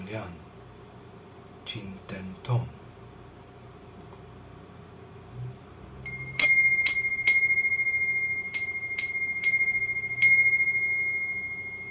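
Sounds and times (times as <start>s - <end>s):
speech: 0.1s - 0.4s, 1.7s - 2.8s
small wind bell ringing: 6.1s - 11.9s.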